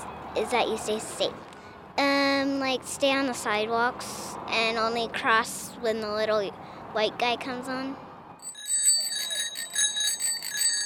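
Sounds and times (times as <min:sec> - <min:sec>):
speech: 0:00.4 - 0:08.0
bicycle bell ringing in a bright metallic trill: 0:08.4 - 0:10.8.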